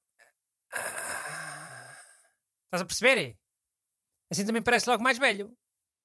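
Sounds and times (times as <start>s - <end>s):
person imitating the effortful grunt of getting up from a chair: 0.7s - 2.2s
speech: 2.7s - 3.4s, 4.3s - 5.6s.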